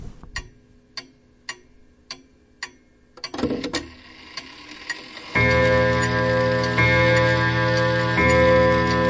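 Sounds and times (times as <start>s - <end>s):
clock ticking: 0.3s - 9.0s
clock mechanism whirring: 3.2s - 9.0s
clock chimes ringing: 5.2s - 9.0s.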